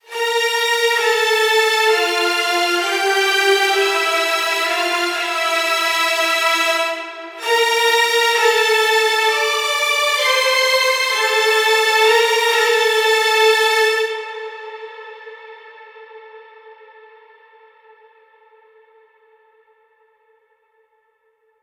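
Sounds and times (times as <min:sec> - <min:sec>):
string section melody in D minor: 0:00.0 - 0:16.4.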